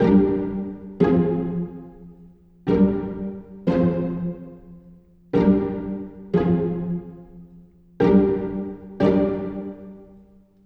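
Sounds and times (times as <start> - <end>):
pizzicato strings in hip hop style in G minor: 0.0 - 10.4.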